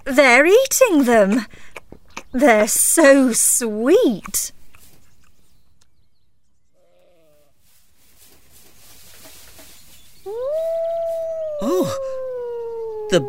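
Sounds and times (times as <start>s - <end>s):
speech: 0.1s - 4.6s, 11.6s - 12.1s
wolf howling: 10.2s - 13.2s.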